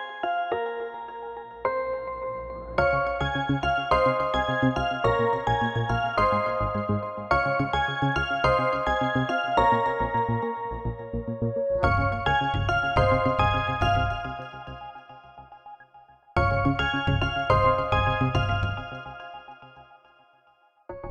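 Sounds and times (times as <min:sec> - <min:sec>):
synthesizer phone ringtone: 0:00.2 - 0:15.2, 0:16.4 - 0:19.4.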